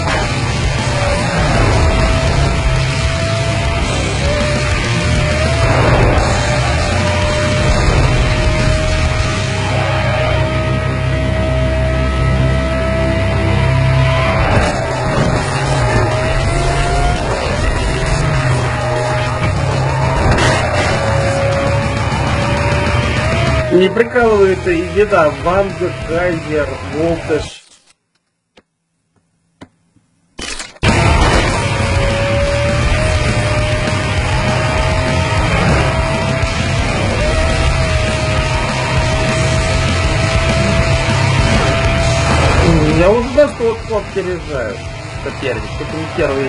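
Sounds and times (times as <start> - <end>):
loud car engine roaring and whining while shifting gears: 0.0 - 27.5, 30.8 - 46.4
speech: 23.9 - 27.6, 43.0 - 46.4.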